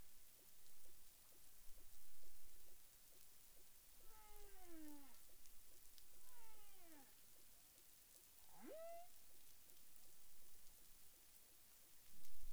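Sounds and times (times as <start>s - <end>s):
low underwater hiss in the Caribbean: 0.8s - 11.0s
humpback whale vocalizations in the Caribbean: 4.1s - 5.2s, 6.2s - 7.1s, 8.6s - 9.1s.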